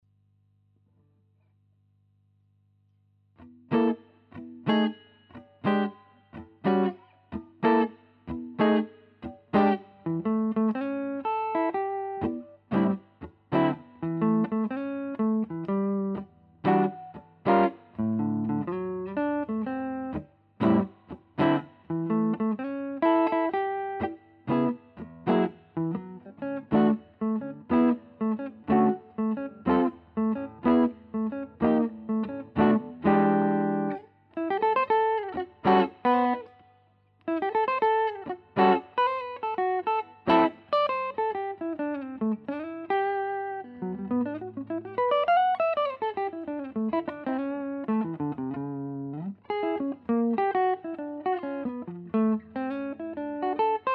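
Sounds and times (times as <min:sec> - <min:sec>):
Telecaster-style guitar with Benedetti P90 pickup: 0:03.4 - 0:36.6, 0:37.2 - 0:53.9.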